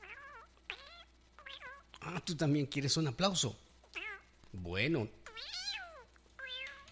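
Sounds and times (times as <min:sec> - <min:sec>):
cat meowing: 0:00.0 - 0:02.0, 0:03.9 - 0:04.3, 0:05.2 - 0:06.8
speech: 0:02.0 - 0:03.7, 0:04.6 - 0:05.2.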